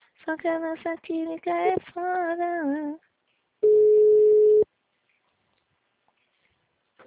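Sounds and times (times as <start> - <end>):
speech: 0.3 - 3.7
telephone line tone after a phone call is cut off: 3.6 - 4.6.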